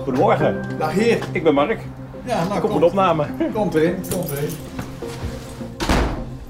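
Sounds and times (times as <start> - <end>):
speech: 0.1 - 4.7
house front door swinging shut: 5.8 - 6.4.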